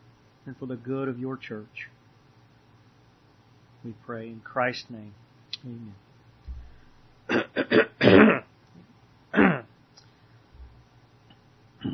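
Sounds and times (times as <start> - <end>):
speech: 0.5 - 2.0, 3.8 - 6.0
person clearing throat during a church service: 7.3 - 8.5, 9.3 - 9.7.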